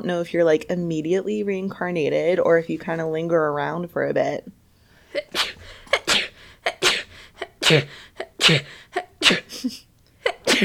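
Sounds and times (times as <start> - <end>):
speech: 0.0 - 5.5, 7.7 - 9.8
long rapid run of loud sneezes: 5.1 - 10.6.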